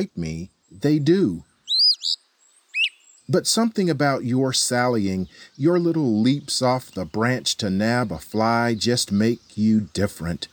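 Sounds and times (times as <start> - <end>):
speech: 0.0 - 2.2, 3.3 - 10.5
Eastern Wood-Pewee song of clear slurred whistles: 1.6 - 3.3.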